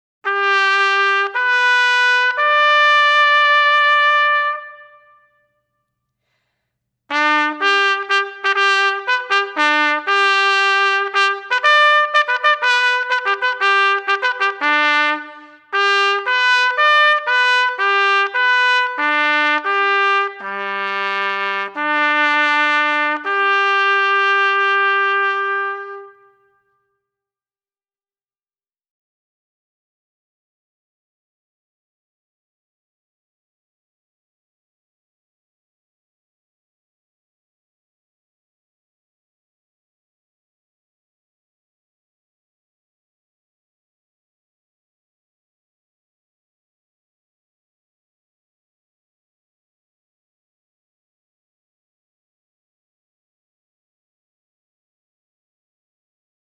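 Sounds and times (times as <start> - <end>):
bugle call: 0.3 - 5.4, 7.1 - 26.5.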